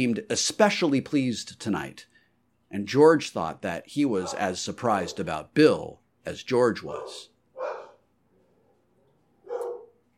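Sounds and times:
speech: 0.0s - 2.1s, 2.7s - 7.3s
dog barking: 4.2s - 5.3s, 6.9s - 8.0s, 9.4s - 10.0s.

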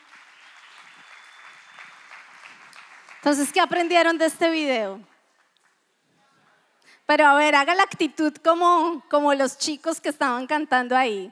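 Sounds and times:
audience applauding: 0.0s - 4.4s
speech: 3.2s - 5.1s, 7.1s - 11.3s.

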